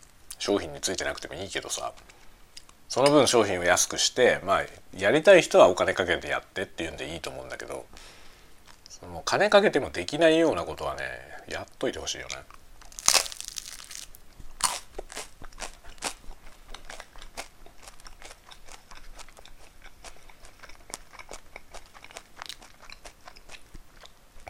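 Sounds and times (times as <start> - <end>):
speech: 0.5 - 2.1, 2.9 - 8.2, 8.9 - 12.6
dry chewing crackles: 12.2 - 24.4
crunching bites of toasted bread while eating: 12.8 - 24.1.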